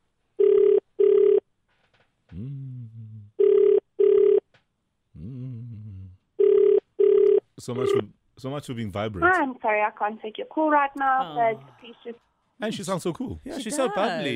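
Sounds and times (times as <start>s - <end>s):
telephone ringing on an outgoing call: 0.4s - 1.4s, 3.4s - 4.4s, 6.4s - 8.0s
speech: 7.6s - 14.3s.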